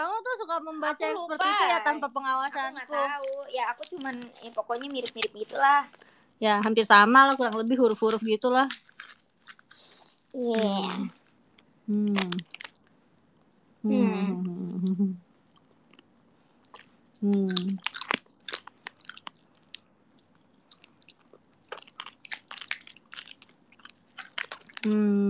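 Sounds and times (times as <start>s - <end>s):
speech: 0.4s - 9.2s, 10.3s - 11.2s, 11.9s - 12.6s, 13.8s - 15.2s, 17.2s - 17.9s, 24.8s - 25.2s
hard candy crunching while chewed: 3.2s - 13.5s, 15.5s - 25.2s.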